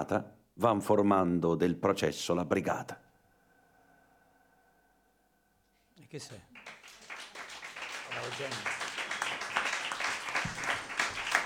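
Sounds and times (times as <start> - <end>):
speech: 0.0 - 3.0, 6.1 - 6.7, 8.2 - 8.8
audience applause at a live theatrical reading: 6.5 - 11.4.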